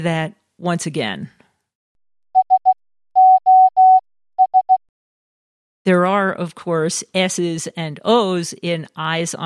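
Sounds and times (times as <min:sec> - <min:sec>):
speech: 0:00.0 - 0:01.4, 0:05.8 - 0:09.4
electronic beep spelling out SOS in Morse code: 0:02.4 - 0:04.8.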